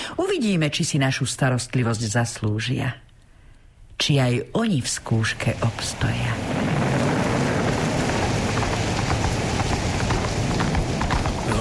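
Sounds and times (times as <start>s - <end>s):
speech: 0.2s - 3.1s, 4.0s - 6.8s
heavy rain in a storm over rocky land: 4.9s - 11.5s
storm wind over rocky land: 5.0s - 11.5s.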